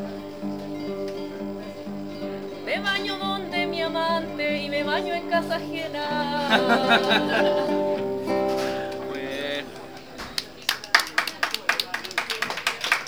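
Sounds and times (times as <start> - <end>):
sustained sung or played tones at a live payada: 0.0 - 10.7
laughter: 2.7 - 13.0
speech: 3.9 - 8.4
audience clapping at a live payada: 6.8 - 13.0.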